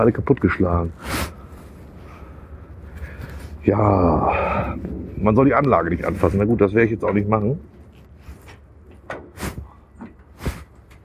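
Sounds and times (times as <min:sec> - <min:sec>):
speech: 0:00.0 - 0:01.4, 0:03.6 - 0:07.7
door opened in an abandoned industrial site clunking and scraping: 0:07.0 - 0:11.0.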